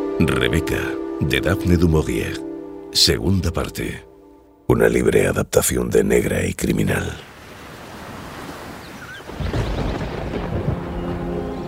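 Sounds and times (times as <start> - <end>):
speech: 0.2 - 4.1, 4.7 - 7.3
ocean waves: 7.1 - 11.6
thunder rumbling: 9.2 - 11.6.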